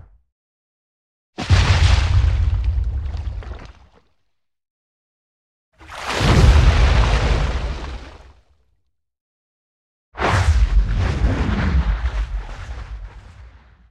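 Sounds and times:
small underwater shock explosion: 1.4s - 4.2s, 5.8s - 8.6s, 10.2s - 13.8s.

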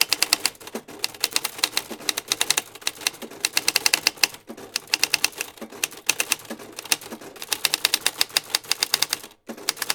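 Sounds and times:
typewriter typing: 0.0s - 9.9s.

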